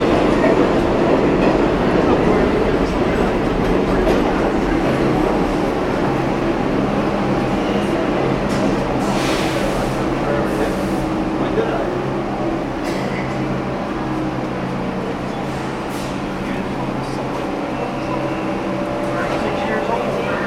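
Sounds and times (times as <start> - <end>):
people in a New York City subway station: 0.0 - 20.4
subway trains in a New York City station: 0.0 - 20.4.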